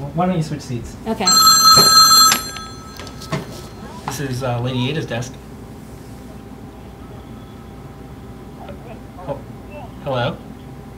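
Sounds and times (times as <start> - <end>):
speech: 0.2 - 2.0, 4.2 - 5.4, 10.1 - 10.5
telephone bell ringing: 1.2 - 3.9.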